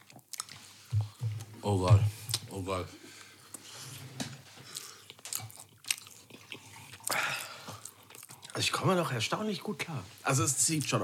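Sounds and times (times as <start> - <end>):
wet chewing of meatballs: 0.0 - 1.5, 4.6 - 8.7
speech: 1.6 - 3.0, 8.6 - 11.0.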